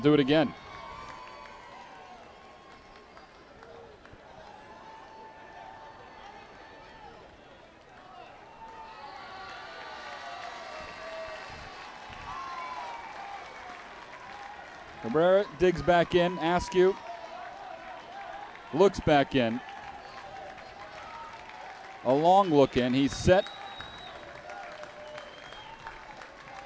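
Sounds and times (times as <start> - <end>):
speech: 0.0 - 0.6, 15.1 - 17.0, 18.7 - 19.7, 22.0 - 23.6
stadium crowd screaming at a foul ball: 0.0 - 7.4, 8.0 - 26.6.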